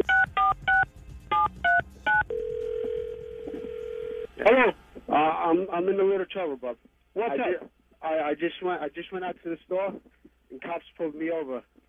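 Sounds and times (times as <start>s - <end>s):
touch-tone beeps of a phone number being dialed: 0.0s - 4.2s
speech: 4.5s - 11.7s.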